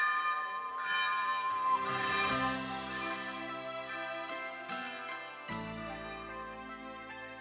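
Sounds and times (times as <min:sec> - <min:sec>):
old church bell ringing: 0:00.0 - 0:06.8.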